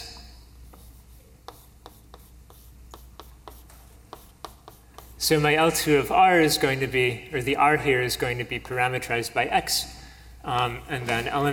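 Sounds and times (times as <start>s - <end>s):
writing on a board during a mathematics lecture: 0.6s - 5.2s
speech: 5.2s - 11.5s.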